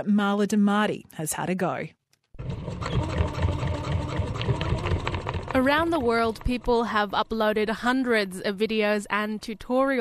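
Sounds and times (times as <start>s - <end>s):
speech: 0.0s - 2.0s, 5.6s - 9.9s
sewing machine stitching a homemade fabric face mask: 2.4s - 6.8s.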